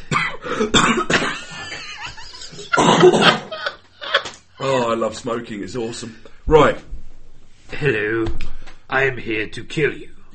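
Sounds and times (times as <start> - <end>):
person coughing in harsh bursts: 0.0 - 1.6, 2.7 - 3.6
speech: 0.6 - 1.2, 3.0 - 3.4, 5.0 - 6.9, 7.8 - 10.3
laughter: 1.4 - 4.9.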